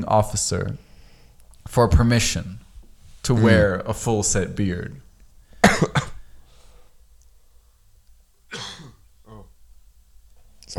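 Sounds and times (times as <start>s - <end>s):
speech: 0.0s - 0.9s, 1.7s - 2.6s, 3.2s - 5.0s
sharp loud coughs close to the mic: 5.6s - 6.3s, 8.5s - 9.5s
soft throaty vocal sounds: 8.6s - 9.6s.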